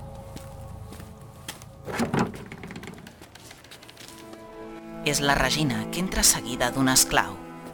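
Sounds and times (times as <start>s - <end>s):
house door scraping as it swings: 1.8s - 3.7s
house door being opened by a man at night: 1.8s - 4.0s
speech: 5.1s - 7.4s.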